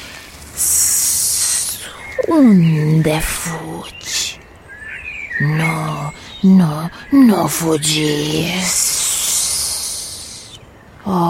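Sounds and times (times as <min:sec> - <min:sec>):
snake hissing: 0:00.0 - 0:02.5, 0:05.6 - 0:10.6
low noise: 0:00.0 - 0:11.2
speech: 0:02.2 - 0:04.2, 0:05.4 - 0:08.8, 0:11.1 - 0:11.2.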